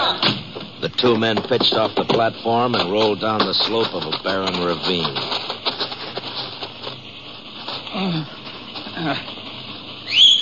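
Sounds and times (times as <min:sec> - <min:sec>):
horses trotting: 0:00.7 - 0:10.2
speech: 0:00.8 - 0:05.4, 0:08.0 - 0:08.4, 0:09.0 - 0:09.3
sharp upward whistle: 0:10.0 - 0:10.3.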